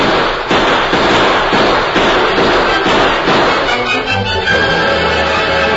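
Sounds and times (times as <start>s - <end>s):
gunshots in a radio-drama gunfight in a freight wagon: 0.0s - 5.6s.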